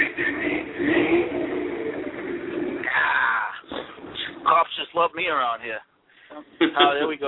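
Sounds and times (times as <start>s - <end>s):
pickup truck engine revving in neutral: 0.0s - 4.7s
speech: 5.0s - 7.2s.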